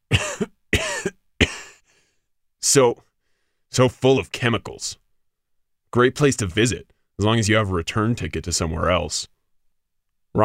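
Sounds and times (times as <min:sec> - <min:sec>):
person coughing raspy throaty bursts: 0:00.1 - 0:01.9
speech: 0:02.7 - 0:03.1, 0:03.7 - 0:05.0, 0:05.9 - 0:09.4.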